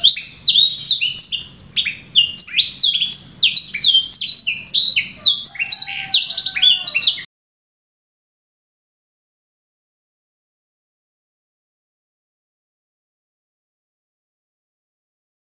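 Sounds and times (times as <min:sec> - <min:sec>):
canary singing descending whistles and rolling trills: 0:00.0 - 0:07.3.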